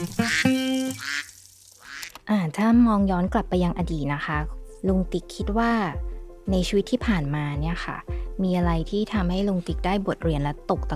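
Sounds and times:
duck quacking: 0.0s - 2.1s
speech: 2.6s - 10.9s.

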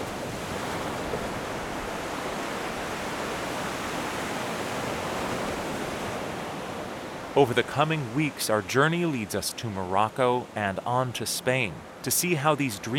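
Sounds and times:
ocean surf breaking on the shore: 0.0s - 12.9s
speech: 7.4s - 12.9s.

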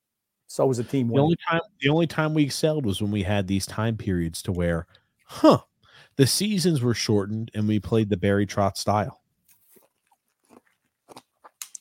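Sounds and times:
speech: 0.5s - 9.2s
crunching of ice crystals from frozen water being chewed: 9.5s - 11.8s.

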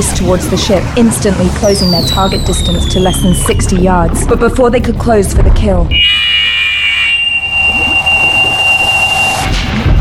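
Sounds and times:
speech: 0.0s - 6.4s
low rumble: 0.0s - 9.9s
sonic blast weapon effect erupting from the aft of a ship: 1.7s - 4.4s, 5.9s - 9.6s.

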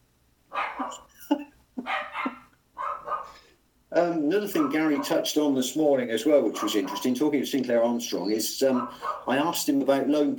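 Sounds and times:
dogs barking back and forth: 0.5s - 1.1s, 1.8s - 3.4s, 4.4s - 5.3s, 6.5s - 7.3s, 8.6s - 9.6s
speech: 0.9s - 1.4s, 4.0s - 10.3s.

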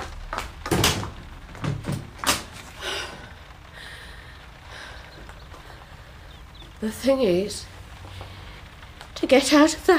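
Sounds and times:
bedroom door lock clunking and rattling: 0.6s - 2.5s
bedroom door shutting: 0.6s - 2.6s
speech: 6.8s - 7.7s, 9.3s - 9.9s.

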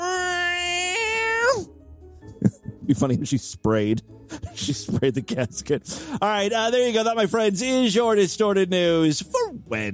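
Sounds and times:
person imitating a cat in heat yowling: 0.0s - 1.7s
speech: 2.9s - 9.9s.

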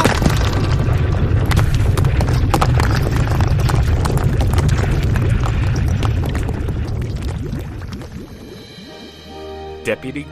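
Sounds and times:
debris impacts: 0.0s - 8.0s
rumbling roar of collapsing rock in a cave-in: 0.0s - 8.4s.

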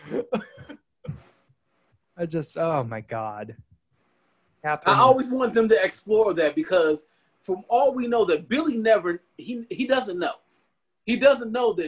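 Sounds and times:
person imitating coughing and hacking: 0.0s - 1.3s
speech: 2.2s - 3.7s, 4.6s - 10.4s, 11.1s - 11.8s.

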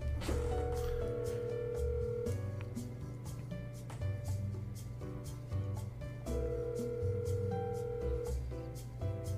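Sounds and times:
low hum: 0.0s - 9.2s
unanswered phone call ringing tone: 0.1s - 2.9s, 6.2s - 8.6s.

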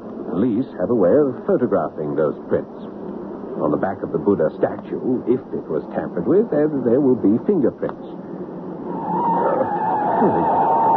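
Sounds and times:
roaring car engine rumble: 0.0s - 10.9s
speech: 0.4s - 3.0s, 3.6s - 8.4s, 10.2s - 10.6s
car tire screech as brakes and handbrake fail: 8.8s - 10.9s.

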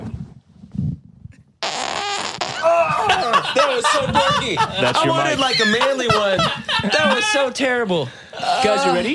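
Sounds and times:
loud raspy fart: 1.6s - 2.7s
laughter: 2.6s - 8.9s
speech: 3.5s - 9.1s.

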